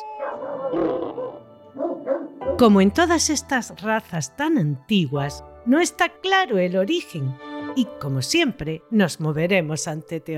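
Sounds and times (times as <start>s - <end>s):
large Spanish mastiff giving deep drawn-out barks: 0.2s - 2.5s
speech: 0.2s - 10.3s.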